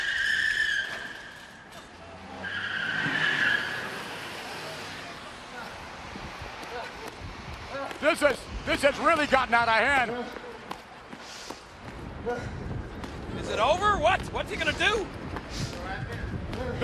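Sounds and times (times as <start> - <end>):
car tires screeching in skids during a wrestling match: 0.0 - 1.6, 2.2 - 5.2
speech: 8.0 - 10.4, 12.2 - 12.6, 13.5 - 15.6.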